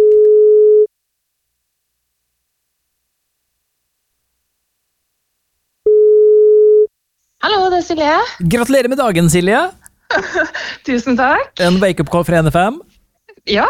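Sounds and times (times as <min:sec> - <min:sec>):
telephone ringback tone on an outgoing call: 0:00.0 - 0:00.9, 0:05.9 - 0:06.9
speech: 0:07.9 - 0:13.6.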